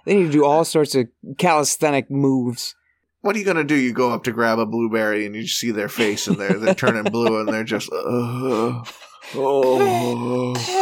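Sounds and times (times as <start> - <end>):
speech: 0.0 - 10.8
laughter: 5.8 - 10.5
voice imitating heavy breathing through the nose: 7.9 - 10.8.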